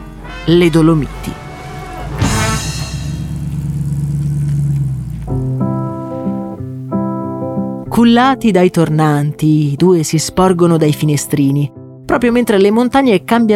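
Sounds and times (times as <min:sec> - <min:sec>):
sustained musical tones: 0:00.0 - 0:08.0
speech: 0:00.5 - 0:01.4, 0:08.0 - 0:13.5
car engine accelerating as travellers set off toward the Dolomites: 0:00.9 - 0:07.9.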